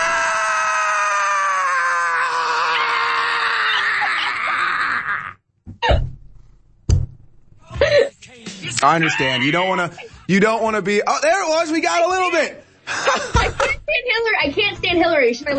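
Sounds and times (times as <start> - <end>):
person screaming a long loud strained scream: 0.0 - 5.4
laughter: 3.6 - 5.1, 7.7 - 10.6, 12.8 - 13.9
speech: 8.8 - 15.5.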